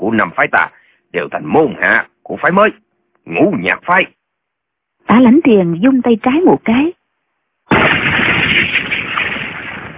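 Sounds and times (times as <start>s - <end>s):
speech: 0.0s - 4.2s, 5.1s - 7.0s
firecrackers exploding: 7.7s - 9.9s.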